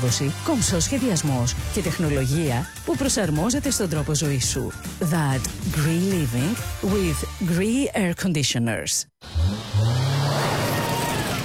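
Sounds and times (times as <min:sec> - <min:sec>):
speech: 0:00.0 - 0:09.6
SUV driving with engine and road roar: 0:09.2 - 0:11.4.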